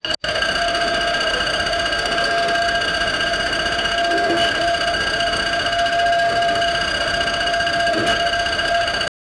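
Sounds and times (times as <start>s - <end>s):
industrial mechanical clicks: 0.0s - 9.1s.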